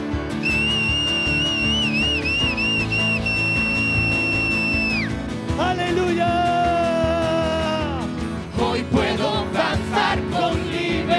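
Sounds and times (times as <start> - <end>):
loud music: 0.0 - 11.1
people whistling along to a song: 0.4 - 5.2.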